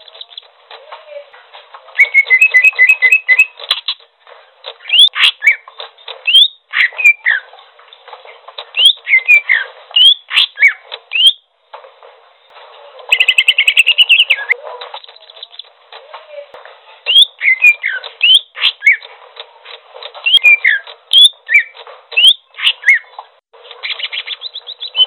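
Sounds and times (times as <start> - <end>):
greater green leafbird singing whistled phrases, chirps and trill: 0.0 - 0.5, 1.9 - 4.0, 4.7 - 7.5, 8.6 - 11.5, 13.1 - 15.7, 17.0 - 19.1, 20.2 - 25.0.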